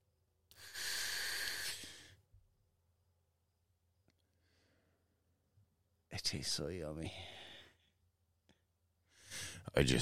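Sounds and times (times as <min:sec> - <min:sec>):
inhaling through a button-activated Skittles-flavoured vape pen: 0:00.6 - 0:02.1
speech: 0:06.3 - 0:07.4, 0:09.7 - 0:10.0.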